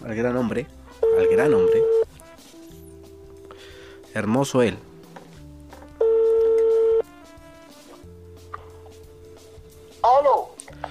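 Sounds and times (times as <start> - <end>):
speech: 0.1 - 2.0, 4.1 - 4.9
telephone call ringing: 1.0 - 2.1, 6.0 - 7.1.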